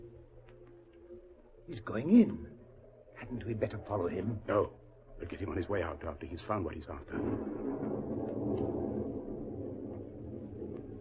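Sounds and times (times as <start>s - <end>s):
speech: 1.7s - 2.6s, 3.2s - 8.2s
distant thunder rumbling before a storm: 7.1s - 10.9s.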